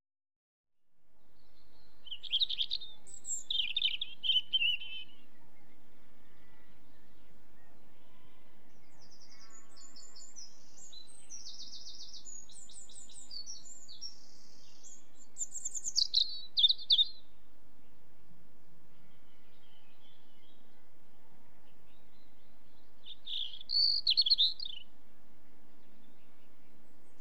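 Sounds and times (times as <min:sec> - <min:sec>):
robin: 0:01.2 - 0:18.1, 0:18.7 - 0:27.1
distant sheep: 0:05.1 - 0:10.9.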